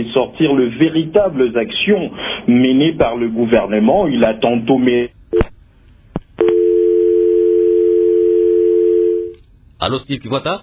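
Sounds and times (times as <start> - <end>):
speech: 0.0 - 5.5, 9.8 - 10.6
telephone dial tone after a dropped call: 6.4 - 9.3.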